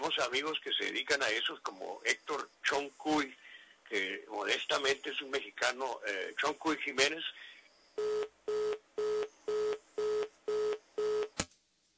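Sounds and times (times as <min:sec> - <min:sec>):
speech: 0:00.2 - 0:08.6
telephone line tone beeps on a failed call: 0:08.0 - 0:11.4.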